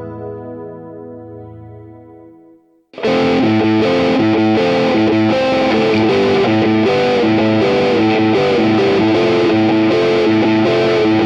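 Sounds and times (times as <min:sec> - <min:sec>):
epic neoclassical metal music: 0:03.0 - 0:11.2.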